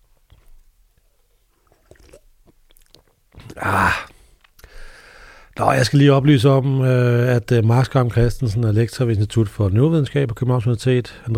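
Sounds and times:
loud wet sip of beer: 1.4 - 4.7
quiet swallow of beer: 1.5 - 4.2
soft mouth clicks: 1.8 - 4.7
speech: 3.6 - 4.1, 5.6 - 11.3.

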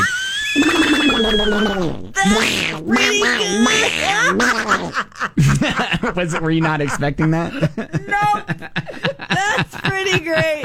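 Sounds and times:
person imitating a cartoon duck's quacking voice: 0.6 - 4.9
speech: 1.3 - 10.6
laughter: 3.4 - 10.6.

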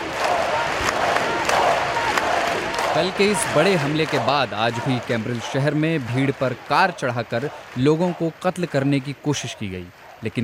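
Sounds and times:
crowd applauding at a memorial gathering for attack victims: 0.0 - 10.4
speech: 3.0 - 10.4.

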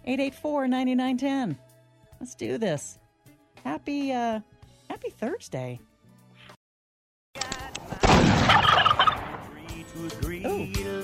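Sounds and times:
speech: 0.0 - 1.6, 2.2 - 3.0, 3.6 - 5.9, 10.0 - 11.0
turkey gobbling: 8.4 - 9.6.

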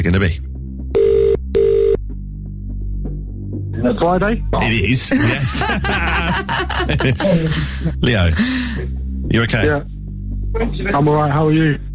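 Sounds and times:
speech: 0.0 - 0.6, 3.8 - 9.9, 10.6 - 11.9
telephone ring tones: 1.0 - 2.0
laughter: 4.6 - 8.8.

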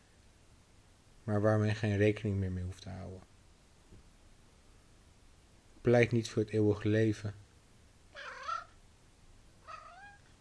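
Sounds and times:
speech: 1.3 - 3.3, 5.8 - 7.4
cat meowing: 8.2 - 8.8, 9.6 - 10.3.

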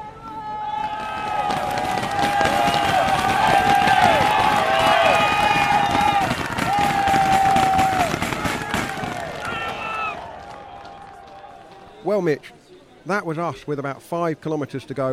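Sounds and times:
roadside crowd cheering riders on a cycling race climb: 0.0 - 12.0
speech: 12.2 - 15.1.

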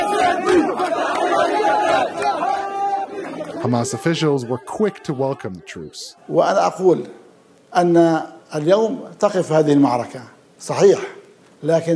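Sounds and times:
crowd of thousands cheering and shouting at a street celebration in the Gaza Strip: 0.0 - 6.7
speech: 3.6 - 11.9.

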